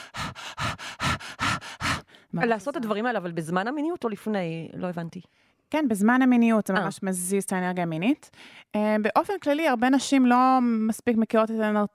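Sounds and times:
rapid breath-of-fire panting breaths: 0.0 - 2.4
speech: 2.3 - 11.9.

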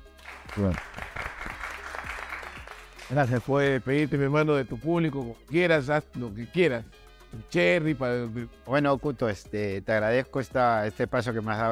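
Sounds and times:
team clapping: 0.0 - 3.8
speech: 0.5 - 1.0, 3.1 - 11.7.

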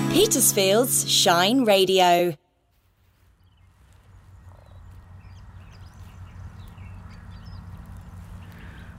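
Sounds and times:
speech: 0.2 - 2.4
birds chirping and calling outdoors: 3.3 - 8.9.

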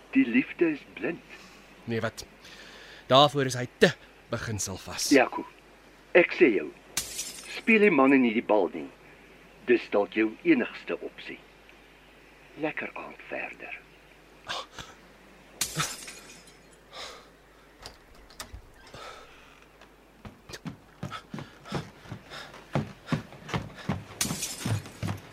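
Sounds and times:
speech: 0.1 - 9.0, 9.6 - 11.5, 12.6 - 13.8, 15.8 - 16.0
glass shards clinking and tinkling as they scatter: 7.0 - 7.6, 15.6 - 16.9, 24.2 - 25.0
drinking glass shattering: 7.0 - 7.7, 15.6 - 16.9, 24.2 - 25.0.

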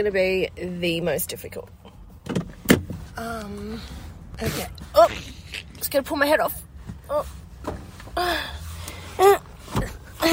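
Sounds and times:
speech: 0.0 - 2.4, 3.2 - 8.6
car door thumps as someone climbs into a car: 2.2 - 3.0.

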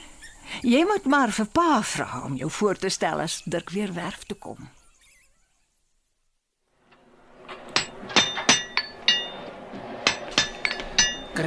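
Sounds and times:
speech: 0.6 - 4.8
metal clinking while fixing horseshoes: 7.4 - 11.4.

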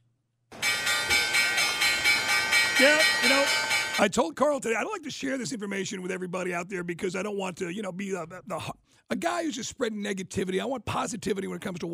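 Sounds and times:
stock market closing bell ringing: 0.6 - 4.0
speech: 2.8 - 11.9.

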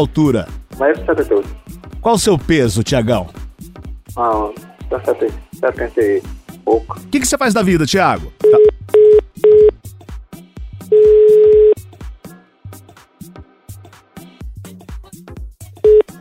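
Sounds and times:
speech: 0.0 - 3.4, 4.2 - 8.6
telephone line beeps after a dropped call: 8.4 - 9.7, 10.9 - 11.8, 15.9 - 16.1.

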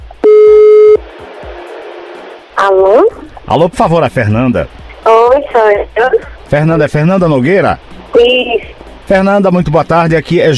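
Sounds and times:
telephone tone as a call is placed: 0.3 - 1.0
speech: 3.5 - 4.8, 5.4 - 10.5.

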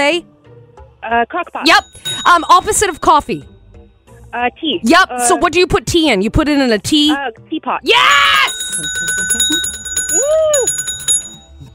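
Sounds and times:
speech: 0.1 - 0.3, 1.0 - 3.5, 4.3 - 10.9
game show buzzer ringing: 8.4 - 11.5.

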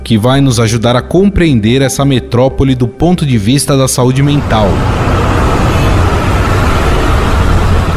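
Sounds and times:
speech: 0.1 - 5.2
dense city traffic with car and bus engines: 4.0 - 7.9
car horns in city traffic: 4.3 - 7.9.

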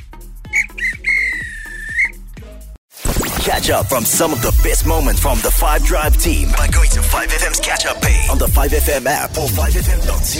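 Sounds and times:
referee's whistle blasts: 0.5 - 2.1
speech: 3.5 - 10.3.

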